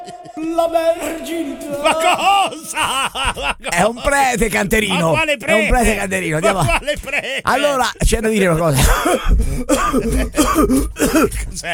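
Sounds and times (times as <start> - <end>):
person coughing after singing: 0.0 - 3.4, 8.8 - 11.6
laughter: 0.0 - 11.7
speech: 0.0 - 11.7.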